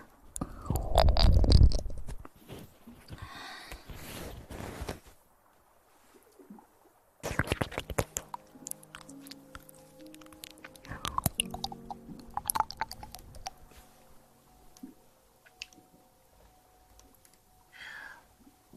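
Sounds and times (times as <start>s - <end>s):
wet mouth sounds with sticky clicks, smacks and squelches: 0.4s - 2.3s, 7.2s - 13.8s.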